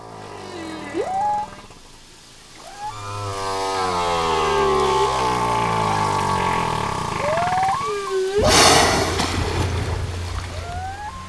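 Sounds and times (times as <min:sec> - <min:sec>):
whale song with whooping calls and wavering moans: 0:00.0 - 0:11.2
brief rushing noisy burst: 0:05.5 - 0:11.2.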